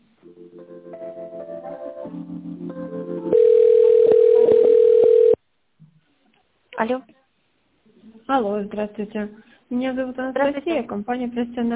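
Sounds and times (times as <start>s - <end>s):
continuous single telephone line tone: 3.3s - 5.4s
speech: 6.9s - 7.1s, 8.3s - 11.7s.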